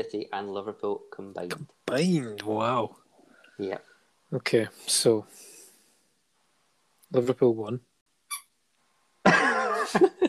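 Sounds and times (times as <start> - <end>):
speech: 0.0 - 3.0, 3.6 - 5.5, 7.1 - 7.9, 9.9 - 10.2
squeaky ball toy being squeezed by a dog: 8.3 - 8.6
laughter: 9.3 - 10.2.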